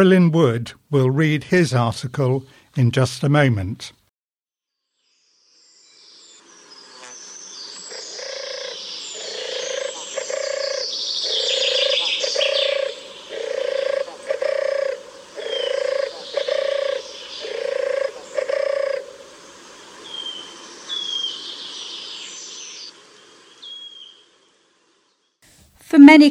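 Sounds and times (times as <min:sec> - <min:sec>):
speech: 0:00.0 - 0:04.0
smaller birds chirping and twittering: 0:05.6 - 0:22.9, 0:23.5 - 0:24.3
turtle dove purring: 0:07.0 - 0:22.1.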